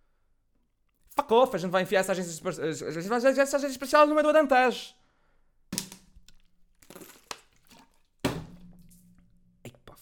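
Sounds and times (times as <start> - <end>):
speech: 1.2 - 5.0
water spilling and splashing across a desk: 5.8 - 9.2.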